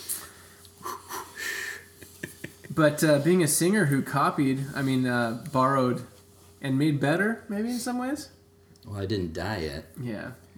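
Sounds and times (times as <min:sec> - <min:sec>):
person taking a deep breath: 0:00.8 - 0:01.9
speech: 0:02.8 - 0:10.4.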